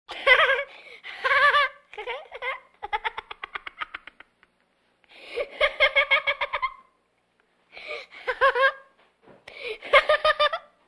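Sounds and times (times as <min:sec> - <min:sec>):
8-year-old boy laughing: 0:00.1 - 0:04.6, 0:05.2 - 0:06.9, 0:07.9 - 0:08.9, 0:09.8 - 0:10.8.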